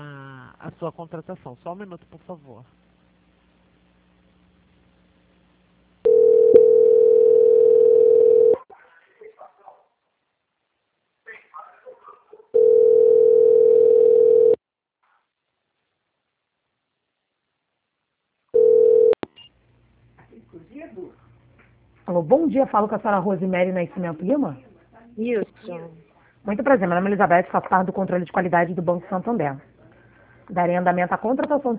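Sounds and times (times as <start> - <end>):
speech: 0.7 - 2.8, 22.5 - 29.7, 30.5 - 31.7
telephone line tone while a bank call is transferred: 6.0 - 8.6, 12.6 - 14.6, 18.6 - 19.2.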